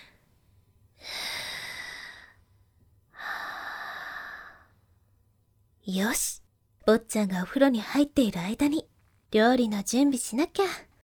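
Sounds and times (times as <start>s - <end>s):
person taking a deep breath to calm down: 1.0s - 4.9s
speech: 5.8s - 10.9s.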